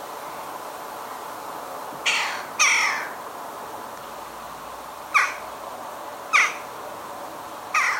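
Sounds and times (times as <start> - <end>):
Western jackdaw calling in a garden in the UK: 2.0 - 3.2, 5.1 - 5.5, 6.3 - 6.8, 7.7 - 7.9.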